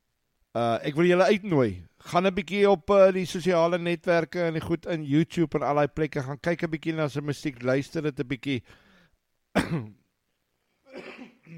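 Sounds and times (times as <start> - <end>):
speech: 0.6 - 8.8, 9.6 - 10.0
throat clearing: 9.6 - 10.0, 10.9 - 11.5.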